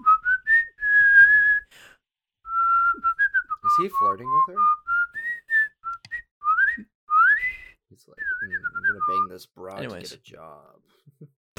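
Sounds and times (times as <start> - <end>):
person whistling: 0.0 - 1.9, 2.5 - 9.3
speech: 3.8 - 4.8, 9.4 - 11.5.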